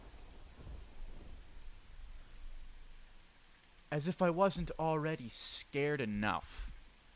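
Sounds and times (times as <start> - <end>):
low rolling thunder during a thunderstorm: 0.0 - 3.3
steady rain during a thunderstorm: 0.0 - 7.1
speech: 3.9 - 6.7.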